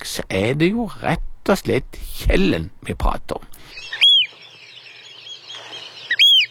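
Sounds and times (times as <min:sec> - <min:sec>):
speech: 0:00.2 - 0:03.8
soft Eurasian oystercatcher calls: 0:03.6 - 0:06.4
Eurasian oystercatcher piping whistles: 0:03.7 - 0:06.4.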